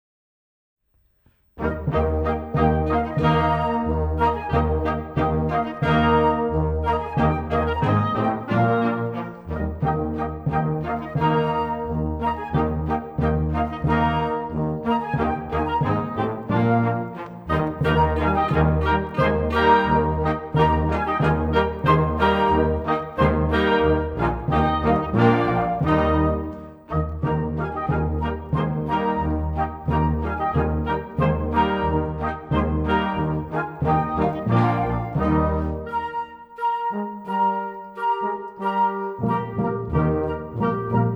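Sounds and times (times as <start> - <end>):
baroque classical music without click track: 1.1 - 41.1.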